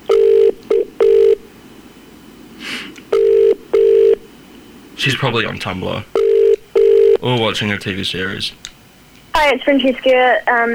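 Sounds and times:
telephone calling tone on an outgoing call: 0.1s - 1.4s, 3.1s - 4.2s, 6.2s - 7.2s
speech: 5.0s - 6.2s, 7.2s - 8.7s, 9.4s - 10.7s.

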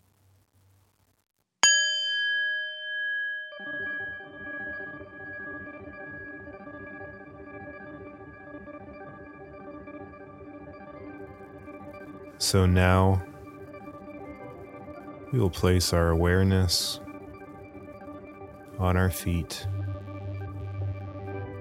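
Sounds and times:
meditation bell ringing: 1.6s - 8.0s
soft steady ambient drone: 3.6s - 21.5s
speech: 12.4s - 13.3s, 15.3s - 17.0s, 18.8s - 19.8s.

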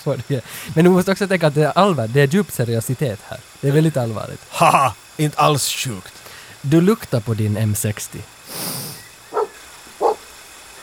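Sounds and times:
speech: 0.0s - 8.8s
dogs barking: 9.3s - 10.3s.

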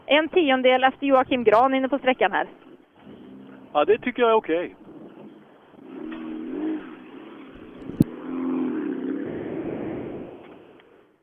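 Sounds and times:
speech: 0.1s - 2.7s, 3.7s - 4.8s
rally car engine revving and pulling away through gear changes: 4.8s - 10.5s.

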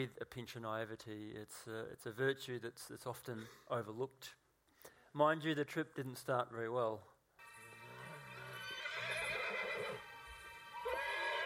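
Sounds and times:
speech: 0.0s - 4.4s, 5.2s - 7.1s
horse whinnying shrilly: 7.9s - 10.0s, 10.8s - 11.4s.

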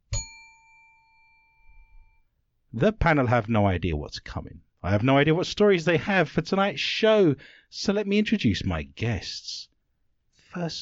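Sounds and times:
single bright metallic bell strike: 0.0s - 1.8s
speech: 2.8s - 9.7s, 10.5s - 10.7s.

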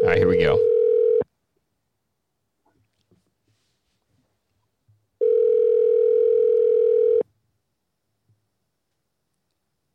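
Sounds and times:
electronic ringback tone of an outgoing phone call: 0.0s - 1.2s, 5.2s - 7.2s
speech: 0.1s - 0.7s.

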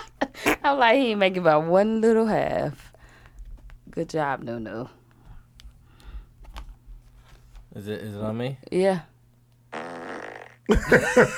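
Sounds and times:
speech: 0.6s - 2.9s, 4.0s - 5.0s, 7.7s - 9.1s, 10.7s - 11.3s
buzzy drawn-out fart sound effect: 9.7s - 10.7s
laughter: 10.7s - 11.3s.

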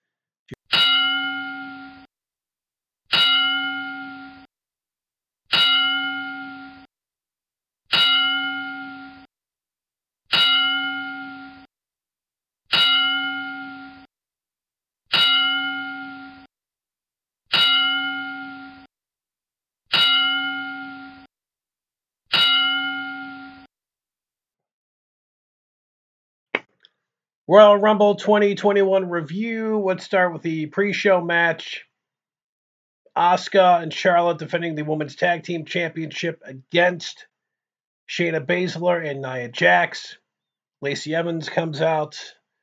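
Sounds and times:
ring bell tolling as a ten-bell salute tribute: 0.7s - 2.1s, 3.1s - 4.5s, 5.5s - 6.9s, 7.9s - 9.3s, 10.3s - 11.7s, 12.7s - 14.1s, 15.1s - 16.5s, 17.5s - 18.9s, 19.9s - 21.3s, 22.3s - 23.7s
speech: 27.5s - 31.9s, 33.2s - 37.3s, 38.1s - 40.2s, 40.8s - 42.4s.

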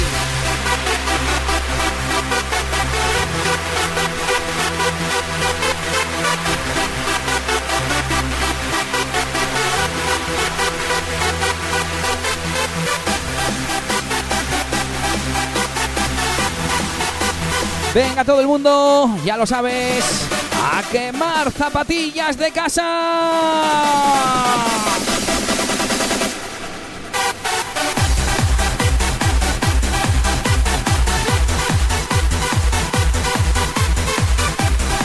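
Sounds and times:
upbeat 2002 dance track with female singer: 0.0s - 35.0s
speech: 18.2s - 25.1s.

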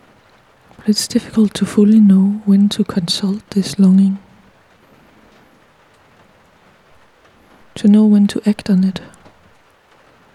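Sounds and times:
heavy rain drumming on surfaces: 0.0s - 10.3s
speech: 0.8s - 4.3s, 7.8s - 9.2s.

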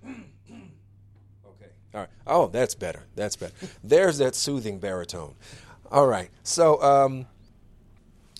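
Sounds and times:
man clearing throat: 0.0s - 1.0s
speech: 1.9s - 7.3s.

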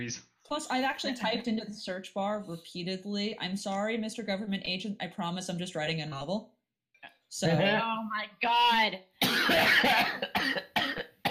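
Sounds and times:
speech: 0.0s - 6.6s, 7.3s - 10.6s
person coughing harshly: 9.2s - 11.2s.

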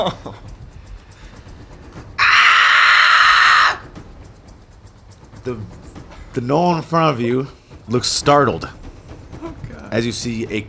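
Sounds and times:
speech: 0.0s - 0.5s, 5.5s - 8.8s, 9.9s - 10.6s
creature screeching: 2.2s - 3.8s.

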